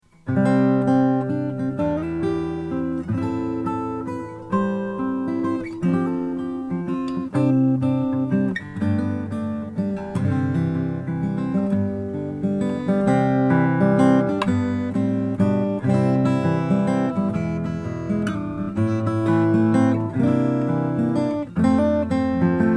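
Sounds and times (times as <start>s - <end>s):
Greenfield Indian rosewood acoustic guitar: 0.0s - 22.7s.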